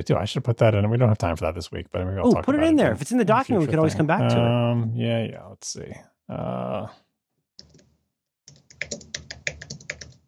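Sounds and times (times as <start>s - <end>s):
speech: 0.0s - 7.0s
typing on an aluminum keyboard: 7.6s - 7.9s, 8.5s - 10.2s.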